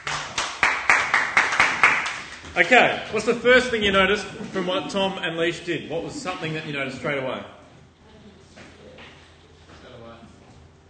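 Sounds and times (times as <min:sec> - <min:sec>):
group clapping hands after a short presentation: 0:00.0 - 0:02.7
speech: 0:02.6 - 0:07.6.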